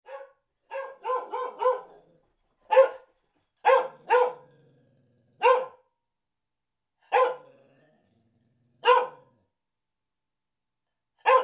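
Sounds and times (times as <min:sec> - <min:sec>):
dog barking: 0:00.0 - 0:02.0, 0:02.7 - 0:04.5, 0:05.4 - 0:05.9, 0:07.0 - 0:07.5, 0:08.8 - 0:09.3, 0:11.2 - 0:11.4.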